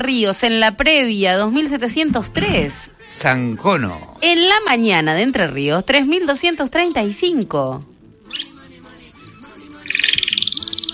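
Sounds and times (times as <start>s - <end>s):
speech: 0.0s - 8.5s
small birds chirping: 8.3s - 10.9s.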